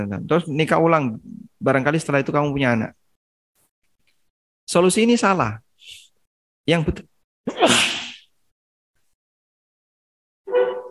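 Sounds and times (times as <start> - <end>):
speech: 0.0 - 3.0, 4.7 - 6.0, 6.6 - 7.7
person sneezing: 7.5 - 8.3.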